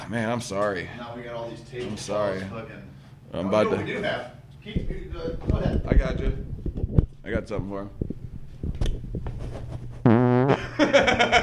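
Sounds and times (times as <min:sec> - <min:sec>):
speech: 0:00.1 - 0:10.2, 0:10.8 - 0:11.4
loud buzzing fart into the microphone: 0:10.0 - 0:10.7
bursts of laughter: 0:10.6 - 0:11.4.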